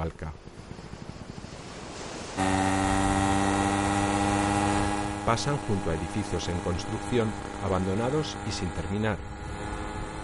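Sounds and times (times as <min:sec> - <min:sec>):
speech: 0:00.0 - 0:00.4, 0:05.3 - 0:09.3
motorcycle engine running on a road beside a beach: 0:02.4 - 0:10.2.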